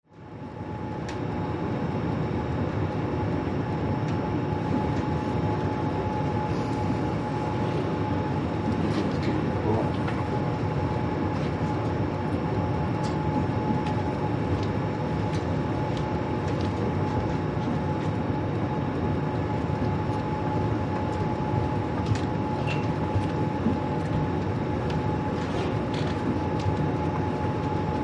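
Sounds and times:
cruise ship bridge interior ambience: 0.1s - 28.0s.

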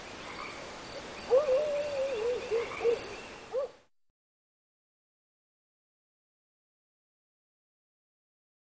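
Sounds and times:
coyote howling with a wavering cry and short yelps: 1.2s - 3.8s.

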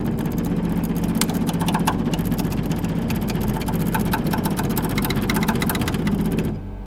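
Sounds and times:
computer printer printing: 0.0s - 6.6s.

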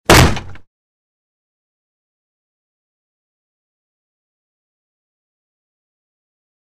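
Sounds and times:
heavy single impact: 0.1s - 0.6s.

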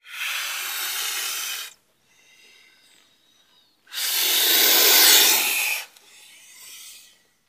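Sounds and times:
albino boas hissing: 0.0s - 2.7s, 3.9s - 7.2s.

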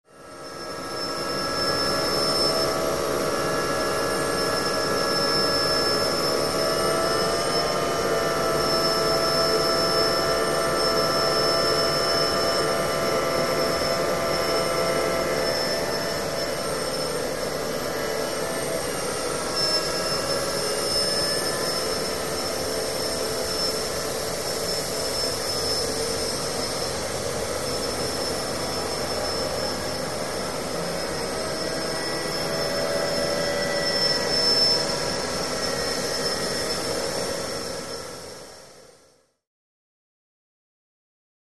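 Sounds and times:
machine hum and high whine drone: 0.1s - 39.4s.

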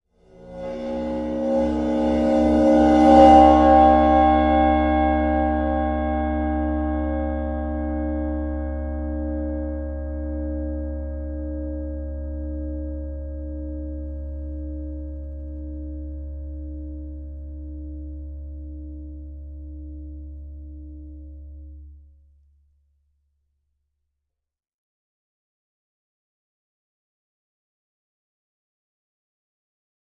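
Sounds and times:
22-inch ride cymbal bowed: 0.3s - 21.1s.

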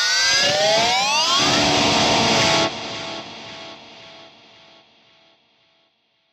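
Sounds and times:
electric guitar screaming: 0.2s - 4.4s.

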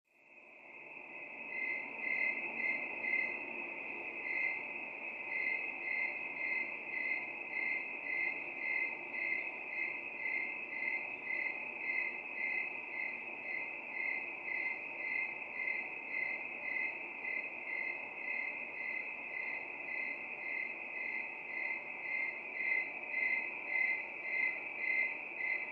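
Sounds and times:
crickets chirping at night: 0.2s - 25.6s.

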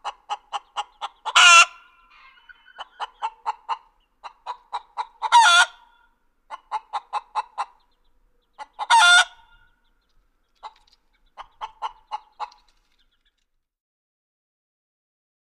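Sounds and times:
chicken clucking: 0.0s - 13.4s
chicken loud harsh squawk: 1.2s - 3.6s, 5.2s - 6.0s, 8.8s - 9.6s.

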